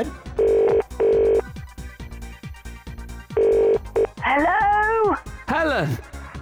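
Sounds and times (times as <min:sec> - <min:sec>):
speech: 0:00.0 - 0:00.2, 0:05.8 - 0:06.1
thumping rhythmic music beat: 0:00.0 - 0:06.3
telephone double-ring ringing tone: 0:00.4 - 0:01.4, 0:03.4 - 0:04.2.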